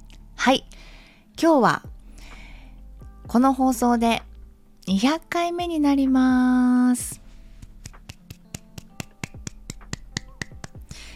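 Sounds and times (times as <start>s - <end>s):
speech: 0.4s - 1.9s, 3.3s - 4.3s, 4.9s - 7.2s
sharp hand claps in a steady rhythm: 7.6s - 10.9s.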